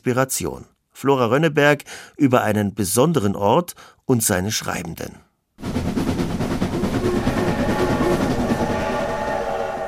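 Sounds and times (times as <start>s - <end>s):
speech: 0.0s - 5.3s
train rumbling with low mechanical roar: 5.6s - 9.8s
train wheels clattering over the tracks: 5.6s - 9.8s.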